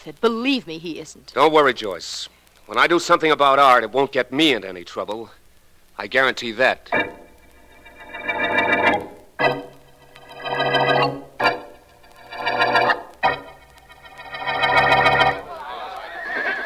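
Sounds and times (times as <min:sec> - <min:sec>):
speech: 0:00.0 - 0:05.4, 0:06.0 - 0:07.2
sharp knocks: 0:06.9 - 0:15.4
horses neighing: 0:16.1 - 0:16.6.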